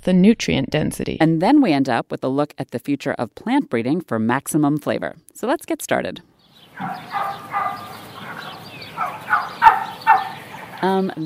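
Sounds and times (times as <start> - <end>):
speech: 0.0 - 8.1, 10.8 - 11.2
flock of turkeys gobbling: 6.6 - 11.1.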